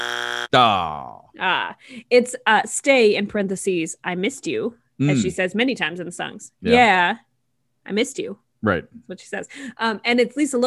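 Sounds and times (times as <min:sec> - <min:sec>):
game-show wrong-answer buzzer: 0:00.0 - 0:00.7
speech: 0:00.5 - 0:07.3, 0:07.9 - 0:10.6.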